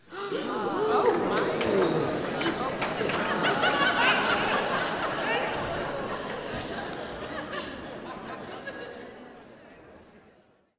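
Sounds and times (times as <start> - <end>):
theater crowd reacting to a big reveal: 0.1 - 9.0
laughter: 0.2 - 9.4.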